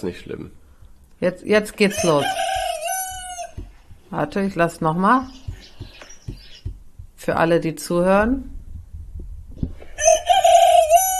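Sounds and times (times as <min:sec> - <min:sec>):
speech: 0:00.0 - 0:00.6, 0:01.2 - 0:02.5, 0:04.1 - 0:05.4, 0:07.2 - 0:08.6
domestic rooster crowing: 0:01.9 - 0:03.7, 0:10.0 - 0:11.1
faint low thumps: 0:02.4 - 0:09.9.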